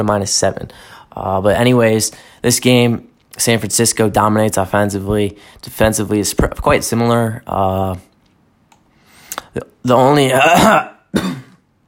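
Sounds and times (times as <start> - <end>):
speech: 0.0 - 8.1, 9.5 - 11.4
person coughing with something stuck in the throat: 10.3 - 11.6.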